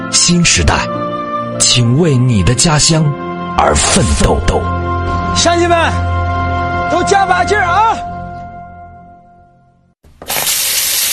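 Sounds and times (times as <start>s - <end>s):
speech: 0.1s - 6.1s, 6.9s - 8.1s
water pouring from a leaky faucet: 10.1s - 11.1s.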